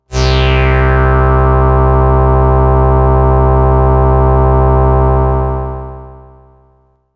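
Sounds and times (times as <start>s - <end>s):
synth pad in E: 0.1s - 6.7s.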